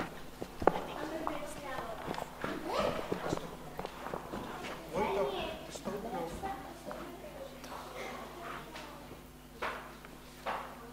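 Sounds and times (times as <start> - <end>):
donkey hooves clopping on a hard floor walking into a stable: 0.0 - 5.2
voices murmuring: 0.0 - 9.6.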